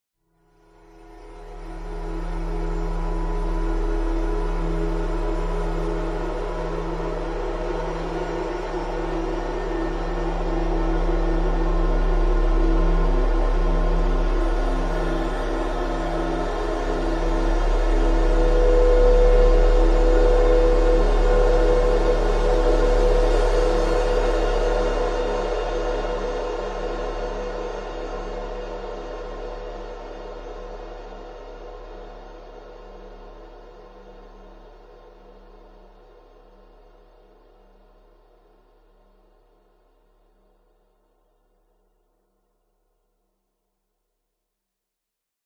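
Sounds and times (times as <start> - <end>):
dark eerie ominous cinematic atmosphere: 0.7 - 39.0.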